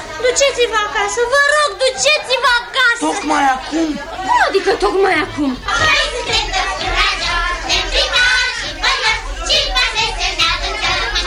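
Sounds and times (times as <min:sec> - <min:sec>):
children playing in a neighbourhood calling and chattering: 0:00.0 - 0:11.2
speech: 0:00.2 - 0:06.4.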